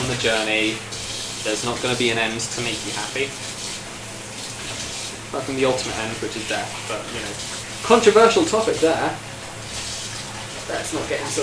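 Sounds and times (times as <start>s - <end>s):
running water splashing as a bowl is washed out in a sink: 0.0s - 11.4s
speech: 0.2s - 3.6s, 5.3s - 9.3s, 10.7s - 11.4s.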